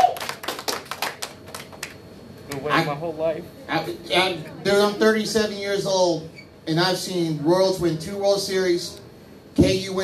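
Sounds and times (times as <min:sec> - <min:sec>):
hands clapping: 0:00.0 - 0:02.7
speech: 0:02.6 - 0:09.0, 0:09.6 - 0:10.0.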